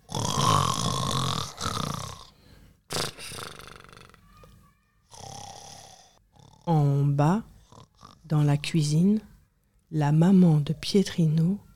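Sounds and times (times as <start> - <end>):
person imitating loud exaggerated snoring of an ogre: 0.0 - 4.2, 5.1 - 6.8, 7.6 - 8.3
speech: 6.7 - 7.5, 8.3 - 9.3, 9.9 - 11.6.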